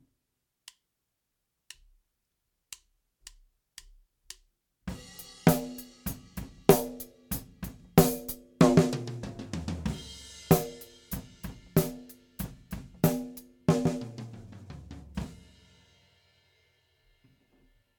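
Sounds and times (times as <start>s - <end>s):
snare drum with no effect: 4.9s - 15.4s.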